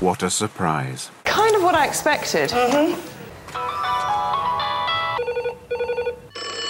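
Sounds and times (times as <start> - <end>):
speech: 0.2 - 3.2
telephone ringing with a bright electronic ringtone: 3.5 - 6.6.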